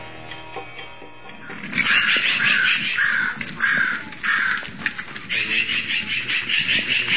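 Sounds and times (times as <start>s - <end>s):
crows cawing in San Francisco California: 1.4s - 7.1s.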